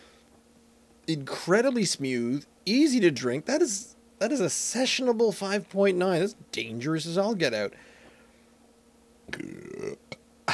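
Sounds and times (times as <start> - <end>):
speech: 1.1 - 7.9
man burping into a microphone while tasting beer: 9.3 - 10.5.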